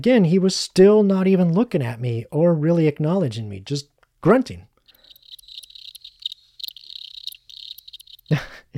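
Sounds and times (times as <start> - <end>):
speech: 0.0 - 4.7, 8.3 - 8.7
crickets chirping: 4.8 - 8.5.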